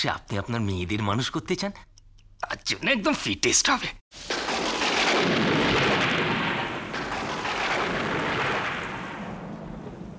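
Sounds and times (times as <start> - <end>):
speech: 0.0 - 4.4, 5.2 - 5.9
deep rolling thunder rumble: 4.2 - 10.1
heavy rain pouring down: 4.2 - 10.1.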